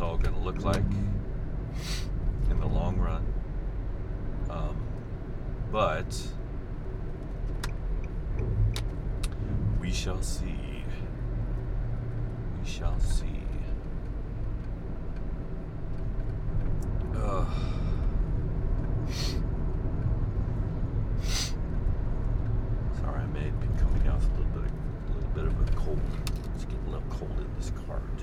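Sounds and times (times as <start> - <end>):
continuous car engine and tire drone: 0.0 - 28.2
road rumble in the cabin of a moving car: 0.0 - 28.2
speech: 0.5 - 1.1, 2.7 - 3.4, 5.7 - 6.4, 9.9 - 10.7, 12.8 - 13.4
brief higher hisses: 21.2 - 21.6.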